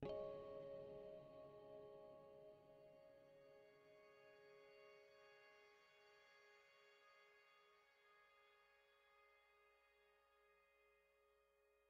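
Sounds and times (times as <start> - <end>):
piano string: 0.0 - 6.9.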